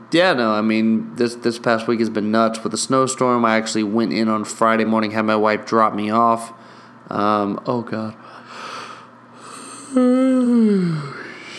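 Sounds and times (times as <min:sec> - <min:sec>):
speech: 0:00.1 - 0:08.3, 0:09.9 - 0:11.2
person yawning: 0:09.4 - 0:11.5.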